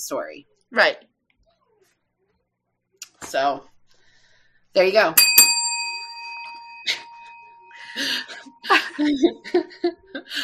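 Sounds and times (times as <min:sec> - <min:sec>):
speech: 0:00.0 - 0:01.1, 0:03.3 - 0:03.7, 0:04.8 - 0:05.3, 0:08.0 - 0:10.4
bright bell ding: 0:05.2 - 0:09.0.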